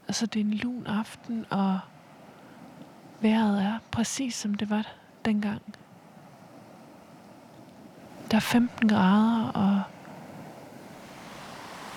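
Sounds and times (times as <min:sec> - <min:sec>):
faint wind: 0:00.0 - 0:11.9
gentle waves washing against a stony beach with seaweed: 0:00.0 - 0:11.9
speech: 0:00.1 - 0:01.9, 0:03.2 - 0:05.8, 0:08.3 - 0:09.9.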